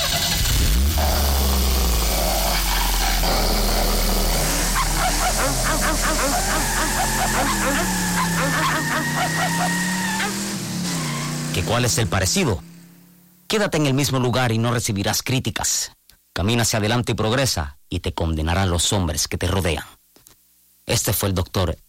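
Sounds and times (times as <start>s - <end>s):
car engine starting and revving: 0.0s - 13.0s
dogs barking: 4.4s - 11.1s
speech: 11.6s - 12.7s, 13.5s - 20.0s, 20.9s - 21.8s.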